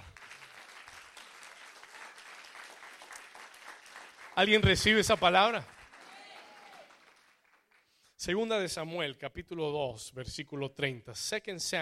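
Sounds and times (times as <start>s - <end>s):
church audience applauding during a sermon: 0.0s - 8.0s
speech: 4.4s - 5.8s, 8.2s - 11.8s.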